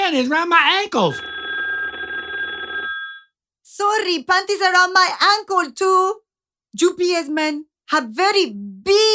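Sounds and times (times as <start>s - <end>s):
speech: 0.1s - 1.3s, 3.8s - 6.2s, 6.8s - 9.1s
telephone bell ringing in a steady trill: 1.0s - 3.3s.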